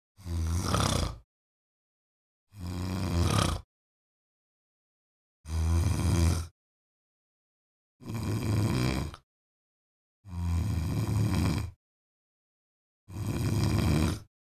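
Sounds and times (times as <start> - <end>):
woman snoring: 0.2 - 1.3, 2.5 - 3.7, 5.5 - 6.6, 8.0 - 9.2, 10.3 - 11.8, 13.1 - 14.3.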